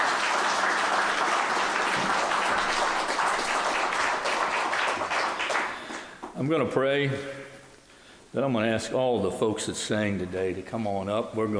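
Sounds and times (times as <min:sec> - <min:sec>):
audience clapping for a singer at a church singing service: 0:00.0 - 0:06.4
speech: 0:06.4 - 0:07.4, 0:08.4 - 0:11.5.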